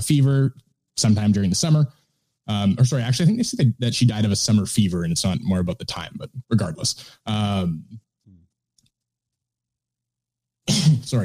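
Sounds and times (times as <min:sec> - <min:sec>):
speech: 0:00.0 - 0:08.1, 0:10.7 - 0:11.2
loud cough: 0:10.7 - 0:11.1.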